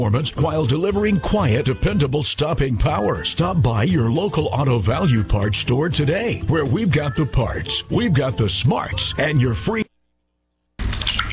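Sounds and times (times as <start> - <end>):
speech: 0.0 - 9.8
water coming through a leaking flat roof: 10.8 - 11.3.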